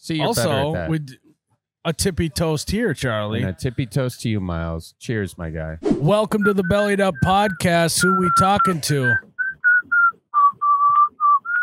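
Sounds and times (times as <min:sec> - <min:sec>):
speech: 0:00.0 - 0:01.2, 0:01.8 - 0:09.3
person whistling a tune while working: 0:06.3 - 0:11.6.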